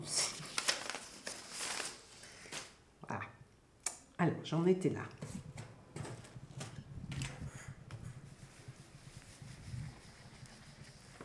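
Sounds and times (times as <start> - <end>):
speech: 0.0 - 0.2, 4.2 - 5.2
waste paper sheets rustling as they are removed: 0.1 - 2.8, 5.2 - 11.2.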